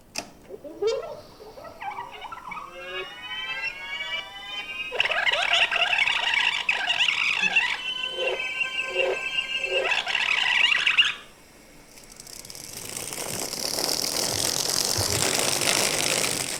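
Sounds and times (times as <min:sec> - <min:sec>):
powerful machine motor whining and roaring: 0:00.5 - 0:16.5.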